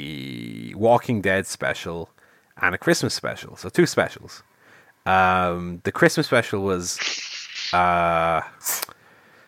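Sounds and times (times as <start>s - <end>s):
speech: 0.8s - 4.5s, 5.1s - 8.9s
person sneezing: 7.0s - 7.9s.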